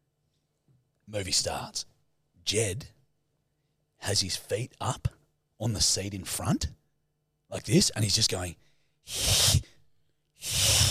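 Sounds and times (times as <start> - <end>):
speech: 1.1 - 3.0, 4.0 - 6.8, 7.5 - 9.7
person imitating a young child hissing: 9.1 - 9.8, 10.4 - 10.8.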